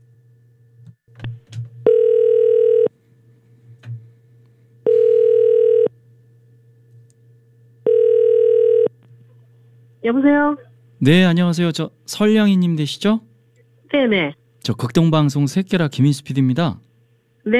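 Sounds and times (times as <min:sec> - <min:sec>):
telephone ringback tone while connecting a call: 0:01.8 - 0:02.9, 0:04.9 - 0:05.9, 0:07.8 - 0:08.9
speech: 0:10.0 - 0:13.3, 0:13.9 - 0:17.5.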